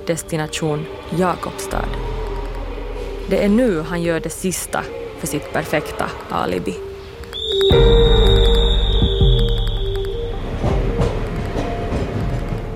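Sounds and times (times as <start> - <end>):
night train rolling along rails with a deep rumble: 0.0 - 6.9, 7.7 - 12.7
high metallic squeal of train: 0.0 - 12.6
speech: 0.1 - 2.3, 3.3 - 6.9
train wheels clacking over track joints: 10.5 - 12.7.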